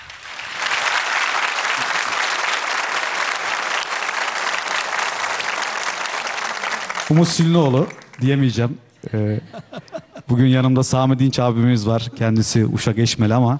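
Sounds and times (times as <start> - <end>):
studio audience applause: 0.0 - 8.6
speech: 7.1 - 13.5
laughter: 9.0 - 10.6.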